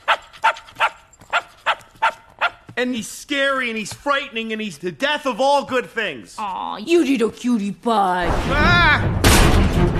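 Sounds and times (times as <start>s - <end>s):
dog barking: 0.0s - 2.6s
speech: 2.8s - 9.1s.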